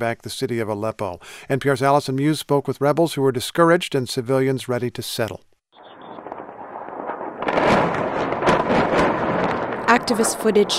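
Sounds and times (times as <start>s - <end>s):
speech: 0.0s - 5.5s, 10.0s - 10.7s
heavy blasts from airstrikes on a besieged rebel-held city: 5.8s - 10.7s.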